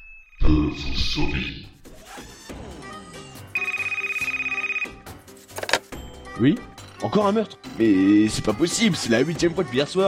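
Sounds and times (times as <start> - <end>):
speech: 0.7 - 1.7, 6.4 - 10.0
old-style telephone bell ringing: 3.6 - 5.1.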